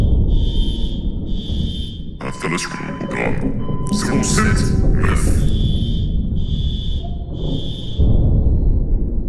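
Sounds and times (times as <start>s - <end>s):
facility alarm blaring in high-pitched pulses: 0.1s - 8.7s
speech: 2.4s - 5.6s.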